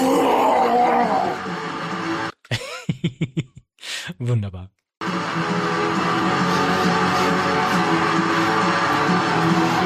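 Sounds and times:
man's triumphant victory howl: 0:00.0 - 0:01.4
speech: 0:03.0 - 0:03.5, 0:04.2 - 0:09.8
man panting with short breathy huffs: 0:03.8 - 0:04.1.

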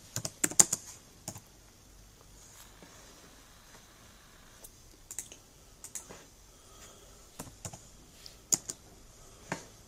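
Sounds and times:
typing on a computer keyboard: 0:00.2 - 0:01.5, 0:05.1 - 0:06.1, 0:08.5 - 0:08.8.

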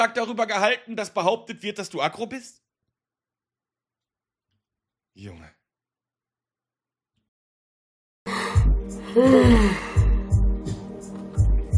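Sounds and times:
speech: 0:00.0 - 0:02.7, 0:05.2 - 0:05.6, 0:09.2 - 0:09.9
drawn-out open-mouthed yawn with a downward voiced groan: 0:08.3 - 0:10.3
steady low thumping beat: 0:08.6 - 0:11.7.

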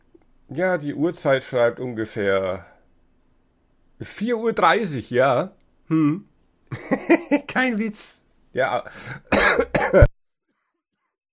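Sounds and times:
speech: 0:00.5 - 0:02.7, 0:04.0 - 0:10.1
harsh coughs: 0:09.2 - 0:10.1.

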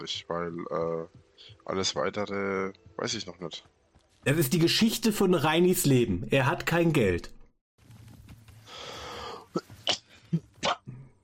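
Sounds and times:
speech: 0:00.0 - 0:07.4
raspy breath: 0:08.6 - 0:09.6.

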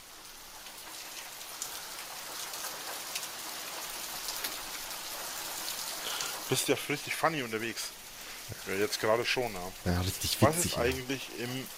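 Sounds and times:
hail falling in a dense patter: 0:00.0 - 0:11.7
hailstones striking a surface: 0:00.6 - 0:06.7
speech: 0:06.5 - 0:08.0, 0:08.6 - 0:11.7.

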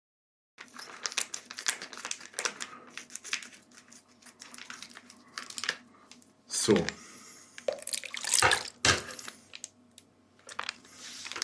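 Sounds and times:
crinkly plastic packaging rustling and crackling: 0:00.6 - 0:05.9, 0:07.7 - 0:09.8, 0:10.4 - 0:11.4
speech: 0:06.6 - 0:07.0.

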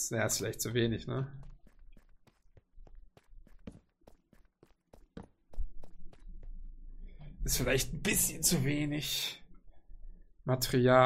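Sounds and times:
speech: 0:00.0 - 0:01.5, 0:07.5 - 0:09.4, 0:10.4 - 0:11.0
footsteps of someone walking back up: 0:01.3 - 0:06.7.

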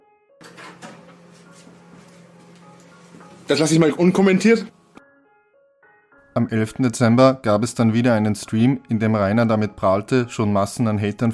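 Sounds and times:
kitchen door scraping and rattling as it is lifted off its hinges: 0:00.4 - 0:01.2
speech: 0:03.5 - 0:04.8, 0:06.4 - 0:11.3.

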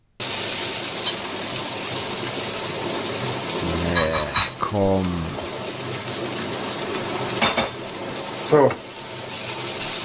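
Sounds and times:
minced meat sizzling in a hot wok: 0:00.2 - 0:10.0
speech: 0:04.7 - 0:05.4, 0:08.5 - 0:08.9
stirring in a wok: 0:08.7 - 0:10.0.

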